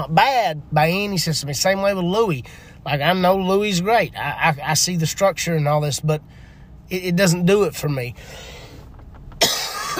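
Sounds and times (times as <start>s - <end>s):
speech: 0.0s - 8.6s
sharp cough: 9.4s - 9.9s.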